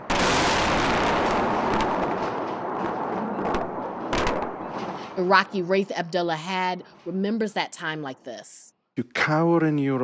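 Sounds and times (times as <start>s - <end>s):
heavy explosions from bombing of a city: 0.0s - 5.4s
speech: 5.2s - 10.0s.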